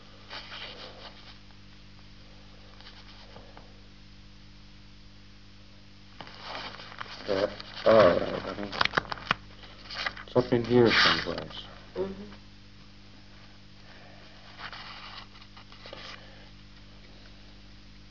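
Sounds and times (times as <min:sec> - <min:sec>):
low electrical hum: 0:00.0 - 0:18.0
small sheets of paper shuffled and rustled: 0:00.3 - 0:01.4, 0:06.2 - 0:11.6, 0:14.5 - 0:16.3
speech: 0:10.5 - 0:12.3.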